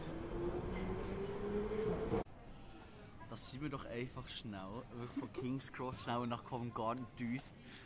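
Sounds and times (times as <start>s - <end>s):
London Underground train rumbling: 0.0s - 2.3s
speech: 3.4s - 7.8s.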